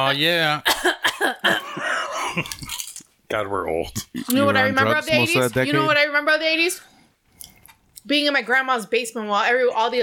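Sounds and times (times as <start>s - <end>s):
speech: 0.0s - 2.7s, 3.3s - 7.0s, 8.0s - 10.0s
person clearing throat: 0.6s - 2.8s.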